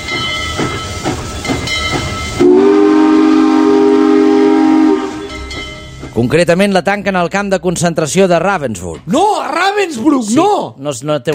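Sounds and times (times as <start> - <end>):
steam train chuffing along the rails: 0.0 - 6.7
steam train whistle blaring: 2.4 - 5.4
speech: 6.2 - 11.3.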